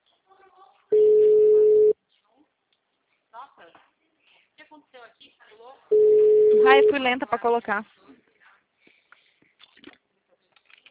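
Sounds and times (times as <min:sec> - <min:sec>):
telephone ringing tone: 0:00.9 - 0:02.0, 0:05.9 - 0:07.0
speech: 0:05.1 - 0:08.0.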